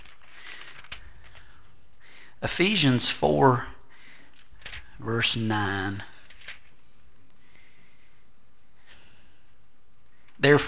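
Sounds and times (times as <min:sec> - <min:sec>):
thin paper Bible pages being turned: 0:00.0 - 0:01.8, 0:04.2 - 0:07.5
speech: 0:02.4 - 0:03.7, 0:05.0 - 0:06.1, 0:10.4 - 0:10.6.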